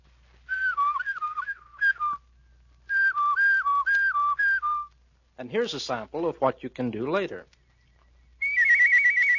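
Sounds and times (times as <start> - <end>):
person whistling a clear melody with their lips: 0.5 - 2.2, 2.9 - 4.9, 8.4 - 9.3
speech: 5.4 - 7.6.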